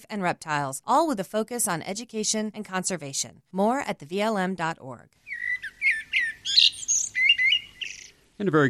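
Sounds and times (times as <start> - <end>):
speech: 0.0 - 5.2, 8.4 - 8.6
grackle calls: 5.2 - 8.4.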